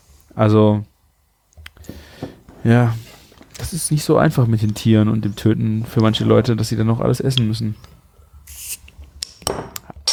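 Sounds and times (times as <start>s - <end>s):
speech: 0.4s - 0.9s, 2.6s - 3.0s, 3.6s - 8.0s
bottle of hop wheat beer opening with a fizzing hiss: 7.8s - 9.5s.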